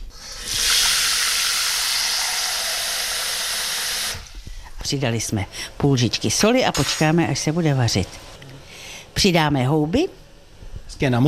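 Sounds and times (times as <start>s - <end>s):
water pouring into a cooking pot: 0.1s - 4.4s
speech: 4.9s - 8.3s, 9.2s - 10.2s, 11.0s - 11.2s.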